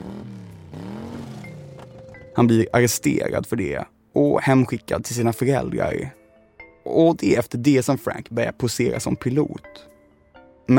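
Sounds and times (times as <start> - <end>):
car engine revving and car pulling away: 0.0 - 2.4
speech: 2.4 - 6.2, 6.8 - 9.9.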